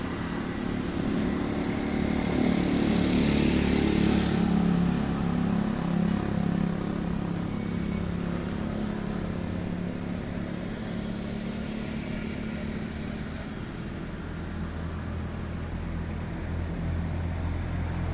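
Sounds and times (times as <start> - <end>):
low rumble of passing traffic beside a seaside promenade: 0.0 - 18.1
motorbike passing: 0.2 - 7.0.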